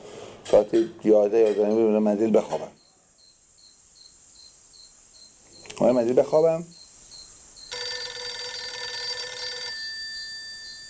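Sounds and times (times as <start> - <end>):
speech: 0.5 - 2.8, 5.8 - 6.8
home telephone bell ringing at night: 7.7 - 10.8.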